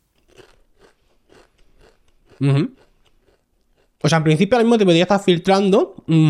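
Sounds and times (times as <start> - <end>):
crunchy snack chips being chewed: 0.1 - 4.1
speech: 2.4 - 2.9, 4.0 - 6.2.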